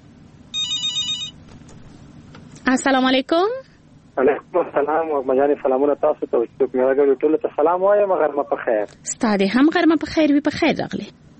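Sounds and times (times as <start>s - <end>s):
faint low hum: 0.0s - 11.3s
telephone ringing for a listener's incoming call with a bright high electronic trill: 0.6s - 1.4s
speech: 2.7s - 11.3s.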